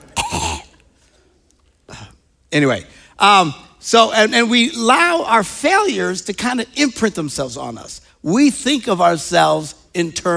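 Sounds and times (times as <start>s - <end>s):
cough into a microphone: 0.1s - 0.8s
speech: 2.5s - 10.3s.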